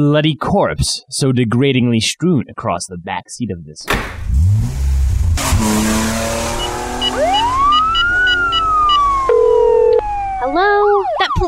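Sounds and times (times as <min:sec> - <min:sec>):
speech: 0:00.0 - 0:06.6, 0:10.5 - 0:11.4
car engine revving and accelerating: 0:03.9 - 0:09.3
police car siren wailing during a chase: 0:06.4 - 0:11.4.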